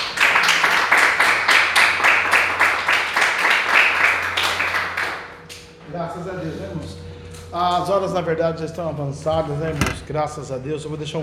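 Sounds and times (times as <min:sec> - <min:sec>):
church audience applauding in praise: 0:00.0 - 0:05.4
speech: 0:07.6 - 0:11.2.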